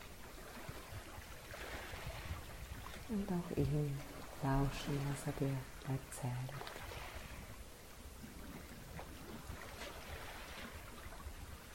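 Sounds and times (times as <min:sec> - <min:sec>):
ocean waves rushing: 0:00.0 - 0:11.7
speech: 0:03.1 - 0:07.1.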